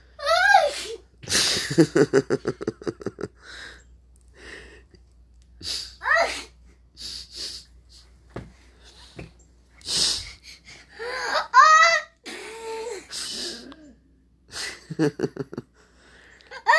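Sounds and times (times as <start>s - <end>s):
small boy fake sneezing: 0.3s - 1.0s, 5.6s - 7.7s, 12.2s - 13.9s
small boy giggling: 1.2s - 3.4s, 11.2s - 15.7s, 16.5s - 16.7s.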